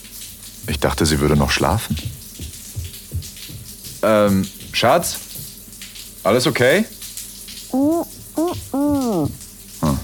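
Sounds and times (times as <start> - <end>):
shower water running: 0.0 - 10.0
speech: 0.8 - 2.2, 4.0 - 5.2, 6.2 - 7.0
person calling out short questioning phrases: 7.7 - 10.0.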